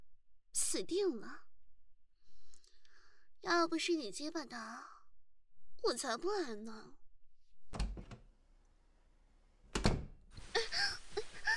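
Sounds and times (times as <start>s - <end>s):
speech: 0.7s - 1.5s, 3.4s - 4.9s, 5.8s - 7.0s
door shutting with a solid thud: 7.8s - 8.4s, 9.4s - 10.6s.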